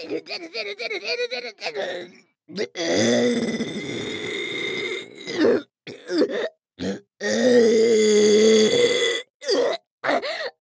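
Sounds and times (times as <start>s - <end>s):
speech: 0.0s - 4.3s
long loud burps: 1.9s - 10.2s.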